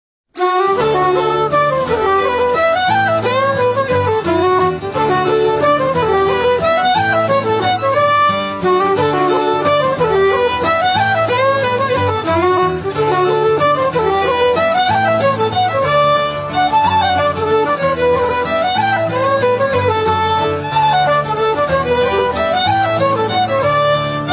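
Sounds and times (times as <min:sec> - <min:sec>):
Celtic mazurka music: 0:00.4 - 0:24.3.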